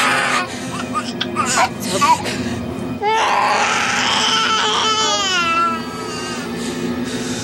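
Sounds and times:
infant crying in wavering wails: 0.0 - 2.3, 3.0 - 6.5
steady hum: 0.0 - 7.4.

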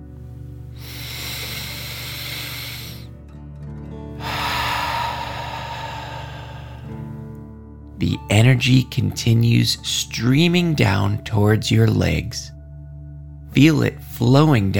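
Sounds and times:
slow inhale through the nose in a breathing exercise: 0.7 - 3.2, 4.2 - 7.2
forceful exhale through the mouth in a breathing exercise: 0.8 - 3.2, 4.2 - 7.2
speech: 8.0 - 12.6, 13.6 - 14.7.

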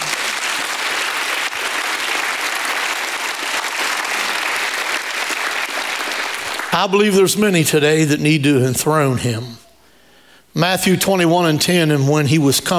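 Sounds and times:
large group clapping: 0.0 - 7.0
speech: 6.8 - 9.6, 10.6 - 12.7.

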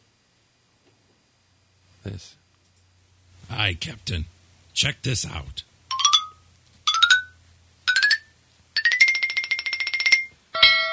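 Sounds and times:
speech: 2.0 - 2.4, 3.5 - 5.7
bright bell ringing and jangling: 7.9 - 10.9.

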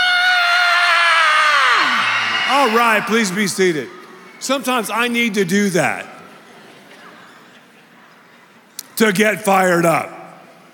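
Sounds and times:
crowd of standing children screaming in an audience: 0.0 - 4.5
speech: 2.6 - 6.2, 9.0 - 10.2.

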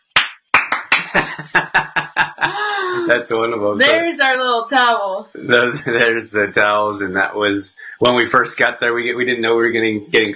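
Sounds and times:
rhythmic clapping in a baseball stadium cheer pattern: 0.0 - 3.0
laughter: 0.9 - 4.1, 5.4 - 6.8
speech: 1.1 - 10.3.

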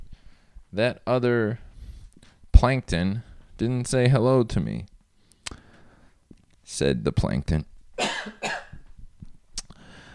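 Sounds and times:
speech: 0.7 - 1.7, 2.6 - 4.9, 6.7 - 8.4
person coughing: 8.0 - 8.8.

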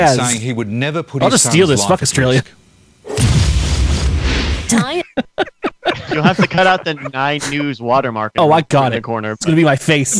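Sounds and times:
speech: 0.0 - 2.6, 4.7 - 5.2, 6.1 - 10.1
explosion boom with roaring rumble: 3.1 - 4.8
laughter: 4.7 - 8.0.

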